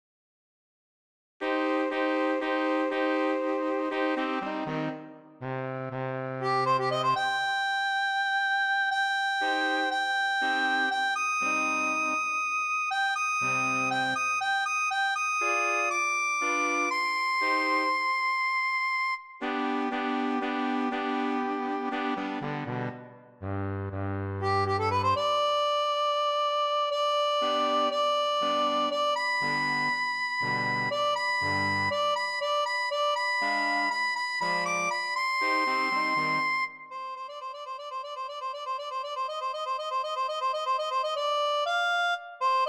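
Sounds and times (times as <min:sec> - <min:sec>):
MIDI music: 0:01.4 - 0:12.4, 0:13.0 - 0:42.6.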